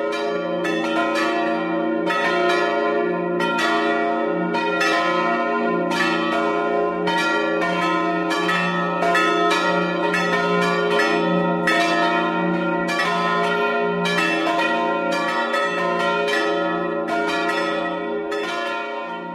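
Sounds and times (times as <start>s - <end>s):
church bells ringing in a sustained peal: 0.0s - 19.3s.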